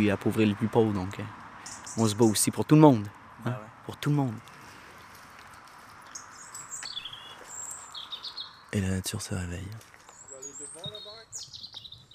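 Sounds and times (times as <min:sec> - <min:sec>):
speech: 0:00.0 - 0:01.4, 0:02.0 - 0:04.5, 0:08.7 - 0:09.9
birds singing outdoors: 0:00.0 - 0:02.8, 0:06.0 - 0:12.1
soft outdoor hiss: 0:00.0 - 0:12.1.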